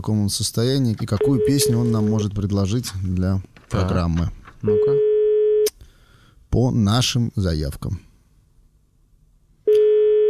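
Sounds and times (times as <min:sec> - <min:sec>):
speech: 0:00.0 - 0:05.1, 0:06.5 - 0:08.1
faint low noise: 0:00.0 - 0:10.2
telephone line tone: 0:01.2 - 0:02.0, 0:04.7 - 0:05.7, 0:09.7 - 0:10.2.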